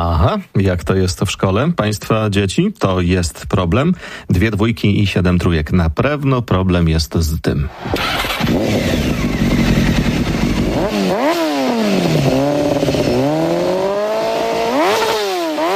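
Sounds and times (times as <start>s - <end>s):
speech: 0.0s - 9.4s
motorcycle engine revving: 7.7s - 15.7s.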